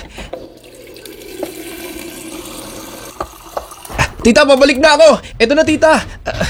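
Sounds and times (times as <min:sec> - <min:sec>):
water running from a tap into a glass: 0:00.2 - 0:04.2
speech: 0:04.2 - 0:06.4.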